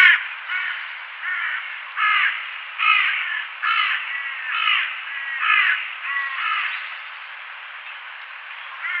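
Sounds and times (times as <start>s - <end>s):
crow giving harsh raspy caws: 0.0s - 6.9s, 8.7s - 8.9s
steady background hiss: 0.0s - 8.9s.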